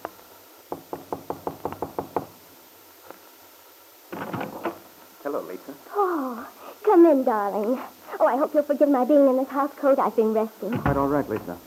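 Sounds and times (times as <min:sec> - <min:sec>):
sharp knocks on a hotel room door: 0:00.7 - 0:02.4, 0:10.7 - 0:11.5
speech: 0:05.3 - 0:11.6.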